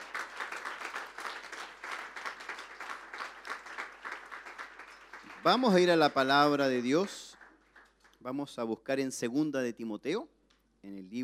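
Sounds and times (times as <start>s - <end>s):
congregation applauding: 0.0s - 8.2s
speech: 5.4s - 7.2s, 8.2s - 11.2s.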